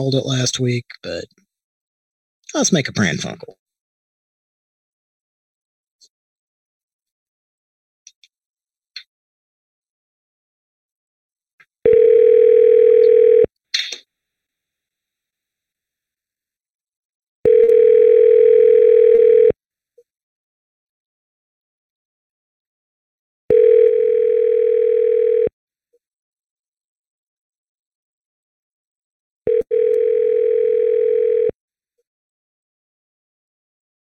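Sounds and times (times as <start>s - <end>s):
speech: 0.0s - 1.4s, 2.5s - 3.6s
telephone ringback tones while a number is being called: 11.9s - 13.5s, 17.5s - 19.6s, 23.5s - 25.5s, 29.5s - 31.6s.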